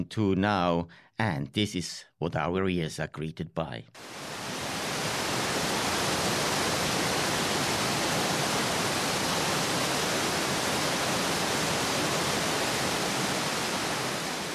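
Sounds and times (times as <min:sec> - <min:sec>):
speech: 0:00.0 - 0:04.4
thundering roar of large waterfall: 0:04.0 - 0:14.5.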